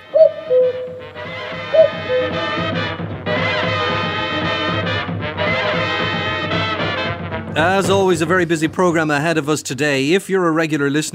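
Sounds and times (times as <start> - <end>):
cuckoo calling: 0.0 - 2.6
music: 0.0 - 9.7
speech: 7.6 - 11.1.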